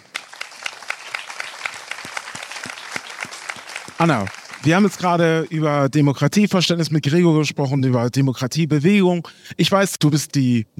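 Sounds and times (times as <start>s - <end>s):
audience applause: 0.0s - 5.5s
speech: 4.0s - 10.7s.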